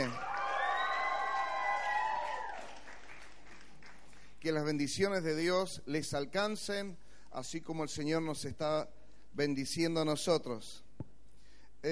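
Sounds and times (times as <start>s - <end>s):
large church audience shouting loudly for joy during a service: 0.0s - 3.3s
speech: 4.4s - 10.8s.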